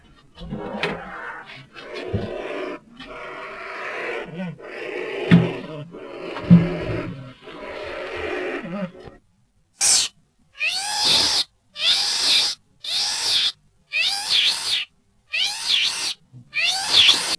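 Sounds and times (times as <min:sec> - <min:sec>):
loris growling: 0:00.4 - 0:09.2
loris fear cries: 0:00.8 - 0:09.2, 0:09.9 - 0:17.3.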